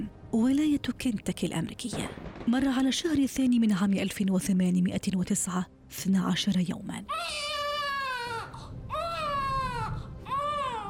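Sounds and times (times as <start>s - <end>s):
speech: 0.0s - 7.5s
newborn baby crying: 7.1s - 10.8s.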